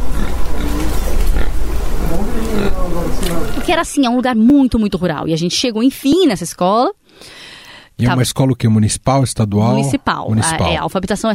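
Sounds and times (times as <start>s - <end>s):
pigs grunting and snorting: 0.0s - 3.7s
speech: 3.2s - 7.4s, 8.0s - 11.3s.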